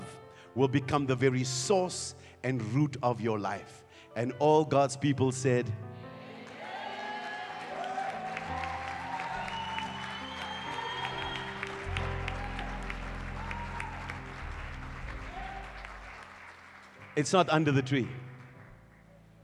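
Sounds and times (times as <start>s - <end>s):
speech: 0.6s - 6.0s, 17.2s - 18.3s
church congregation clapping hands in sustained applause: 6.4s - 19.1s.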